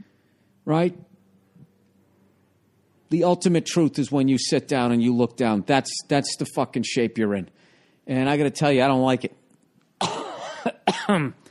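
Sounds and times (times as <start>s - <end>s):
speech: 0.7s - 1.1s, 3.1s - 9.4s, 10.0s - 11.4s
raspy dry phlegmy coughing: 10.0s - 11.5s.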